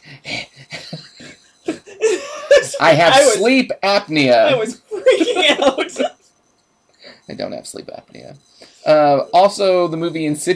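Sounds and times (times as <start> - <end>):
voice imitating a child's raspy wheezing breaths: 0.0 - 3.2, 7.0 - 7.3, 8.4 - 8.9
person laughing: 0.3 - 3.6, 4.2 - 6.1
speech: 2.8 - 6.1, 7.3 - 10.5.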